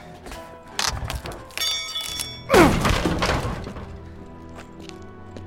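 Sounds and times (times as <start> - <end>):
brief metallic creak and groan: 0.8 - 2.6
crowbar prying with heavy thumps and cracking impacts: 0.8 - 3.9.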